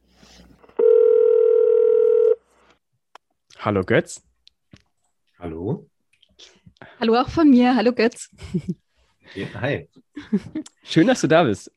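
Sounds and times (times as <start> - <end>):
telephone ringback tone: 0.8 - 2.4
speech: 3.6 - 4.3, 7.0 - 11.7.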